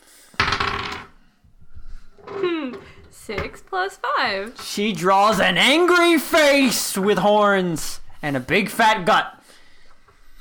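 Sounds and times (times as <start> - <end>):
dice rolling on a table during a tabletop role-playing game: 0.4 - 1.2
speech: 3.3 - 9.4.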